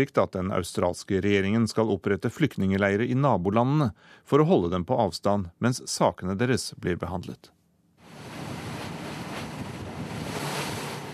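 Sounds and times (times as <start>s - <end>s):
speech: 0.0s - 7.6s
ocean waves crashing: 8.0s - 11.1s
wind noise: 8.0s - 11.1s.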